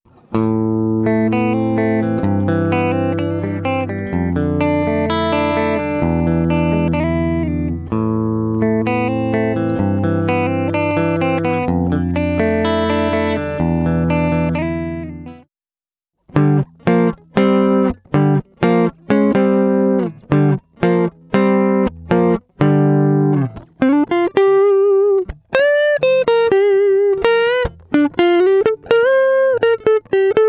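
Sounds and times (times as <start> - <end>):
electric guitar: 0.1 - 15.4, 16.3 - 30.4.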